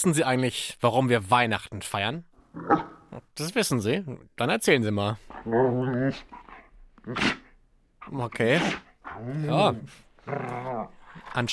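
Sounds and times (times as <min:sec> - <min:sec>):
speech: 0:00.0 - 0:06.4, 0:07.0 - 0:07.4, 0:08.0 - 0:11.5
dog whiny yowl: 0:05.4 - 0:07.6, 0:08.5 - 0:11.0.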